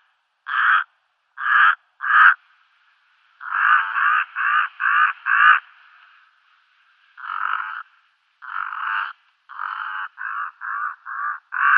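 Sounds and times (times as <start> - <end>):
brown-necked raven croaking: 0.4 - 2.4, 3.4 - 5.7, 7.2 - 11.7.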